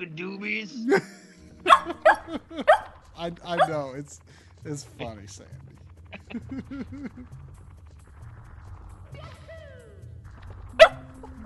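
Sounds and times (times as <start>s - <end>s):
speech: 0.0s - 5.7s, 6.3s - 7.5s
laughter: 0.8s - 2.8s, 6.1s - 7.4s
low rumble: 1.6s - 11.4s
dog giving short yipping barks: 1.7s - 3.8s, 10.8s - 11.1s.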